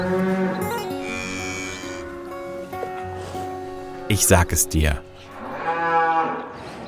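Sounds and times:
cow mooing: 0:00.0 - 0:02.3, 0:05.3 - 0:06.7
speech: 0:04.1 - 0:05.1.

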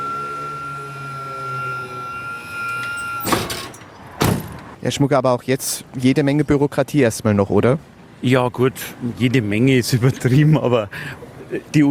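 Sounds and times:
vehicle wheelchair lift electric motor whine lowering to the street: 0:00.0 - 0:04.0
metallic clunk of wheelchair lift stopping: 0:02.3 - 0:04.8
speech: 0:04.8 - 0:11.8.

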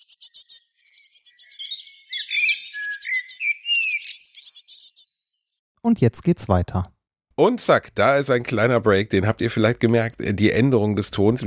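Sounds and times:
speech: 0:00.0 - 0:00.5, 0:05.8 - 0:11.4
several birds chirping and trilling: 0:00.0 - 0:05.6.

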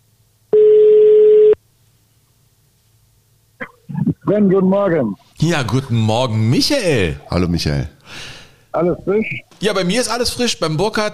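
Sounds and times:
phone line hiss: 0:00.5 - 0:01.6
telephone ringback tone while a call is placed: 0:00.6 - 0:01.6
speech: 0:04.3 - 0:11.1.

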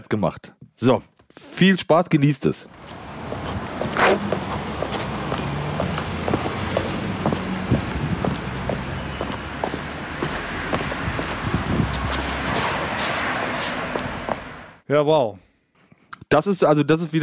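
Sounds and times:
speech: 0:00.0 - 0:03.0, 0:14.9 - 0:15.4, 0:16.3 - 0:17.2
faint low rumble of traffic: 0:02.7 - 0:14.8
sneaker footsteps crunching along a sidewalk scattered with dry fallen leaves: 0:02.8 - 0:14.5.

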